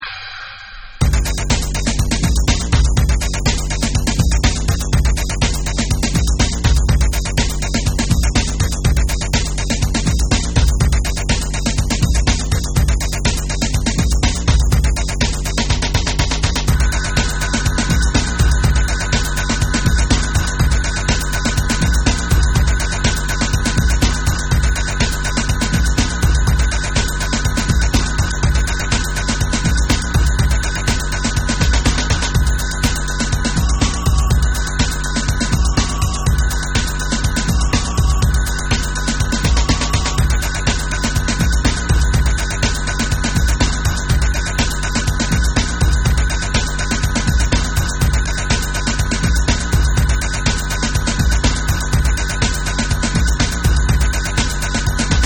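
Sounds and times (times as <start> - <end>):
industrial bass music mix: 1.0 - 55.2.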